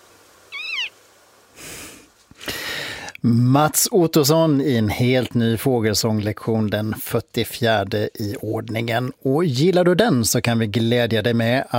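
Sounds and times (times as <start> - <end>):
Western marsh harrier call in spring display flight: 0.5 - 1.0
speech: 3.2 - 11.7.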